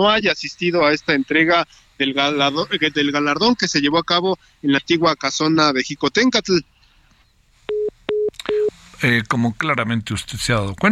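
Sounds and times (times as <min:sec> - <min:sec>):
speech: 0:00.0 - 0:06.7, 0:08.5 - 0:10.9
faint hiss: 0:00.0 - 0:10.9
telephone busy tone beeps after a dropped call: 0:07.7 - 0:08.7.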